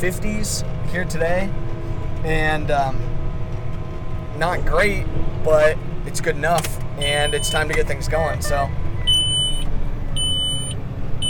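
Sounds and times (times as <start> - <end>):
speech: 0.0 - 3.2, 4.4 - 8.8
steady tractor engine rumble: 0.0 - 11.2
tractor auto steer system beeping while planting a hilly field: 7.0 - 7.8, 9.0 - 11.2.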